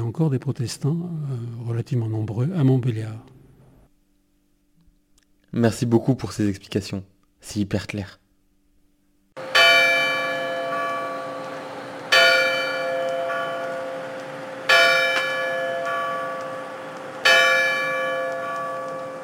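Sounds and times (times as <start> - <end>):
speech: 0.1 - 3.3, 5.5 - 8.2
bells of a nineteenth-century Catholic church tolling: 9.4 - 19.2.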